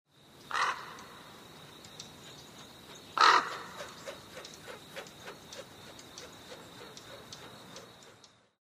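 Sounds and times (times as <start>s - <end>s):
crow flying past: 0.5s - 1.2s, 3.2s - 8.1s.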